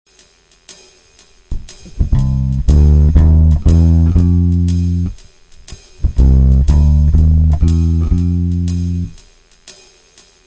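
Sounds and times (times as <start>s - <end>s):
walking bass playing intervals of a fourth: 1.5s - 9.2s.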